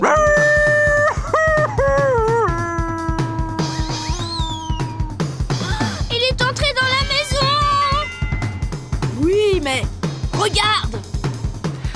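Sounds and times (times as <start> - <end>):
wolf howling as it falls into pot: 0.0 - 1.2, 2.0 - 5.2
steady rhythmic beat: 0.8 - 11.9.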